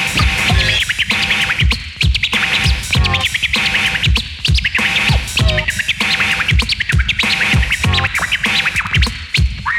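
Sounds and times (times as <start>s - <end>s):
rapid turntable scratching imitating bird chirps: 0.0s - 9.7s
steady thumping beat: 0.0s - 9.7s.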